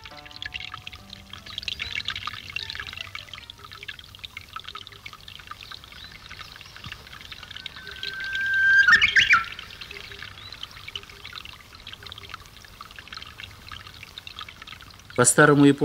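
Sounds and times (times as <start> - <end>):
Japanese nightingale singing a clear whistled phrase: 0.0 - 12.4
speech: 15.2 - 15.8.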